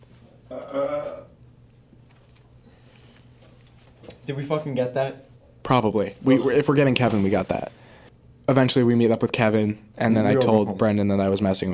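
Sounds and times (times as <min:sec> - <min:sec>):
low hum: 0:00.0 - 0:11.7
throaty burp: 0:00.5 - 0:01.4
speech: 0:04.3 - 0:07.8, 0:08.5 - 0:11.7.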